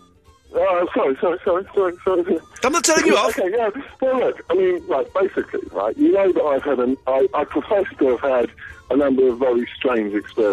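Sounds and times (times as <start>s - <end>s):
speech: 0.6s - 10.5s
tinny narrowband voice over a phone line echoing a delayed radio broadcast: 2.6s - 3.4s.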